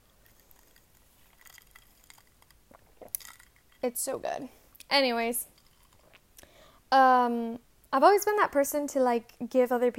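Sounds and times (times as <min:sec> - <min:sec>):
person sipping a hot drink: 0:00.2 - 0:03.8, 0:05.6 - 0:06.6
speech: 0:03.8 - 0:05.5, 0:06.9 - 0:09.9.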